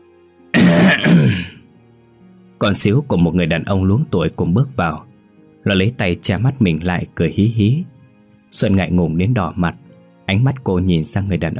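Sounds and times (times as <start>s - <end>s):
loud gruff throat clearing: 0.6s - 1.6s
speech: 2.6s - 7.9s, 8.5s - 11.5s.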